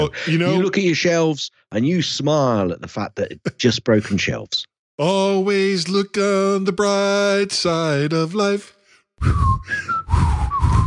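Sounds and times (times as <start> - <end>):
speech: 0.0 - 10.8
person whistling a short shaky tune: 9.2 - 10.8.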